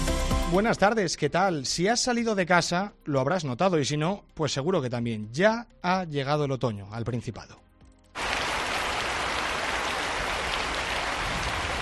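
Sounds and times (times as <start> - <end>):
speech: 0.5 - 7.6
heavy rain pouring: 8.2 - 11.8.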